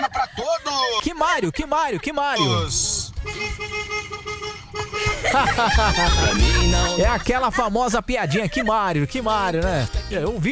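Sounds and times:
laughter: 0.0s - 2.6s, 5.0s - 9.5s
speech: 0.0s - 4.3s, 5.0s - 10.4s
car horn honking in sustained blasts: 2.3s - 7.6s.

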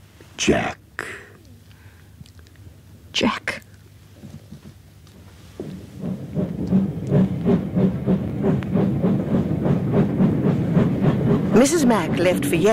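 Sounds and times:
speech: 0.4s - 0.8s, 3.2s - 3.5s, 11.6s - 12.7s
train departing with clickety-clack on rails: 5.2s - 12.7s.

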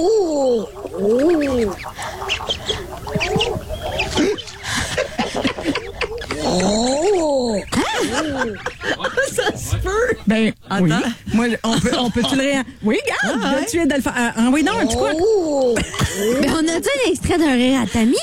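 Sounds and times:
speech: 0.0s - 1.2s, 10.3s - 18.2s
common eider ducks calling with crooning coos: 0.0s - 10.3s
laughter: 0.0s - 10.3s, 11.6s - 12.6s, 14.7s - 16.8s.

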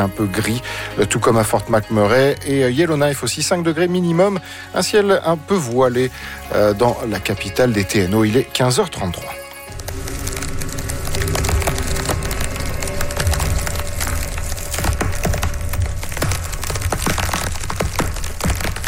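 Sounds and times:
speech: 0.0s - 9.4s
cabbages twisted slowly by hand, creaking and snapping: 9.7s - 18.8s.

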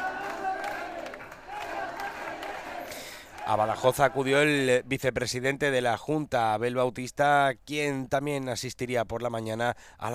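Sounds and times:
scattered clapping: 0.0s - 4.2s
voices shouting together: 0.0s - 4.4s
large crowd roaring and cheering at a rally: 0.0s - 4.8s
speech: 3.5s - 10.1s.

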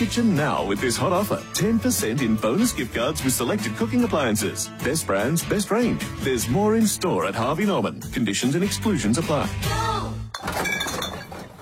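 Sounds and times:
speech: 0.0s - 10.7s
glass drink bottles crashing as they are tipped in for recycling: 10.3s - 11.5s
glass drink bottles clinking and clattering as they are tipped in for recycling: 10.3s - 11.6s.

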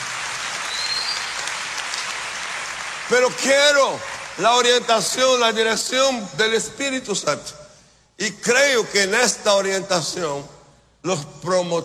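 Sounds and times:
church congregation applauding during a sermon: 0.0s - 5.6s
speech: 3.1s - 7.6s, 8.2s - 11.8s.

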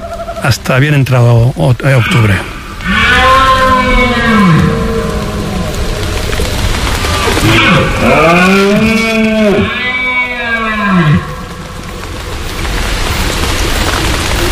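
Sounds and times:
constant background hiss: 0.0s - 14.4s
speech: 0.4s - 3.0s, 7.5s - 9.8s, 11.0s - 11.3s
Red Deer rutting roars in Monfragüe: 2.8s - 5.9s, 7.1s - 11.3s.

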